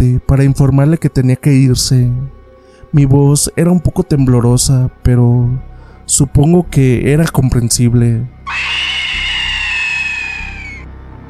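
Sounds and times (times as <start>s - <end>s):
speech: 0.0s - 8.7s
woman screaming: 8.5s - 10.9s.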